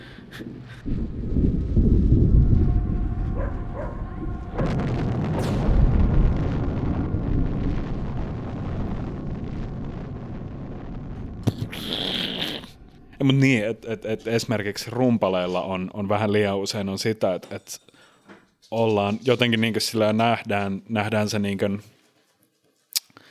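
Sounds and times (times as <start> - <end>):
nuclear bomb explosion sound effect: 0.0 - 15.5
sharp crackle: 0.1 - 15.7
speech: 0.4 - 1.6, 13.2 - 18.0, 18.7 - 21.9.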